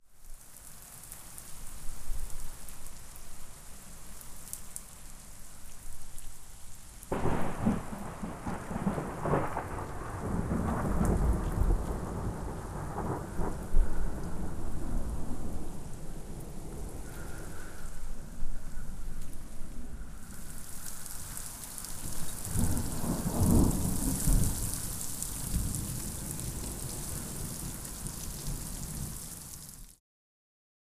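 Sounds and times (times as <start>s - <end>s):
outdoor ambience: 0.0s - 29.9s
distant violent thunderstorm: 7.1s - 18.9s, 21.8s - 29.6s.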